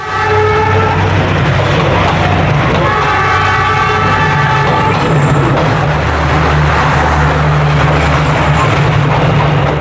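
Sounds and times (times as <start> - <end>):
long blaring train horn blasts: 0.0 - 1.2, 2.8 - 5.2
train rumbling along a narrow city street in Hanoi: 0.0 - 9.7.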